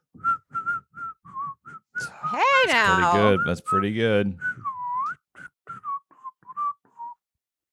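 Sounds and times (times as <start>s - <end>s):
person whistling a tune: 0.0s - 7.2s
speech: 2.3s - 4.5s.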